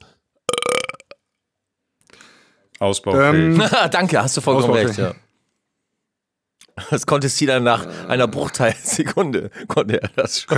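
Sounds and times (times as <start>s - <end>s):
loud deep burp: 0.5s - 1.2s
speech: 2.8s - 5.2s, 6.9s - 10.5s.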